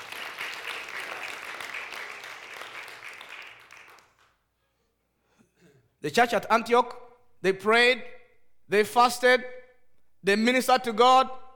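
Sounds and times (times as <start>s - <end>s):
audience clapping hands: 0.0s - 4.5s
speech: 6.0s - 9.6s, 10.2s - 11.4s.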